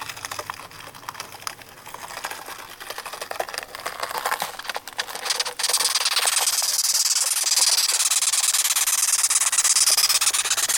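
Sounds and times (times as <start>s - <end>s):
velvet red ant stridulating: 0.0s - 10.7s.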